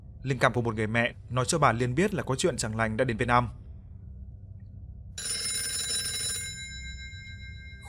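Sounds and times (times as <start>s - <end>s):
low hum: 0.0s - 7.8s
speech: 0.2s - 3.6s
telephone electronic bell ringing around midnight: 5.2s - 7.8s.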